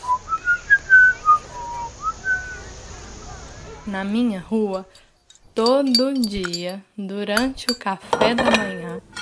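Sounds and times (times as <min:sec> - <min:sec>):
person whistling a short wandering melody: 0:00.0 - 0:02.6
speech: 0:03.9 - 0:09.0.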